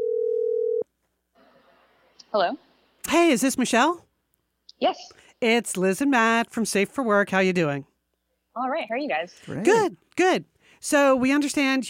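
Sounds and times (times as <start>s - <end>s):
telephone dial tone as a call is placed: 0.0s - 0.8s
speech: 2.3s - 4.1s, 4.8s - 7.9s, 8.6s - 11.8s.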